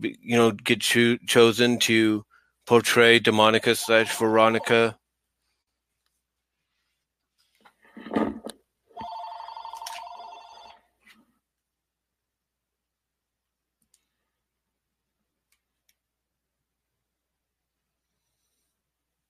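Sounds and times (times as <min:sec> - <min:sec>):
speech: 0:00.0 - 0:05.0
telephone ringing: 0:03.8 - 0:04.9, 0:08.9 - 0:10.9.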